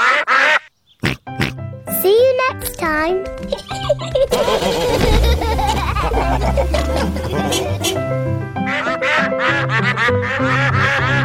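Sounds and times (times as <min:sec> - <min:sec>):
ducks quacking: 0:00.0 - 0:01.6, 0:04.3 - 0:11.2
speech: 0:02.8 - 0:11.0
laughter: 0:03.4 - 0:08.0, 0:08.8 - 0:11.2.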